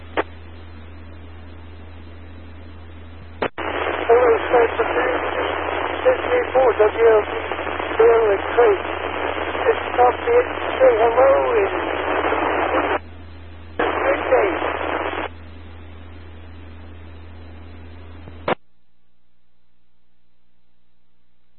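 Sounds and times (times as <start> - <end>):
radio static on a narrow hissy channel: 0.0 - 0.5, 3.2 - 18.6
low steady hum: 0.0 - 21.5
faint garbled voice of a caller through a radio repeater: 4.1 - 8.9, 9.6 - 11.9.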